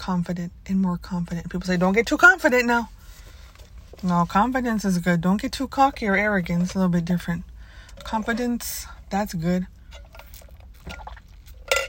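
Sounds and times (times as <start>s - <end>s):
speech: 0.0s - 3.0s, 4.0s - 10.0s
liquid sloshing while getting a drink of water: 9.8s - 11.8s
glass clinking: 11.6s - 11.8s.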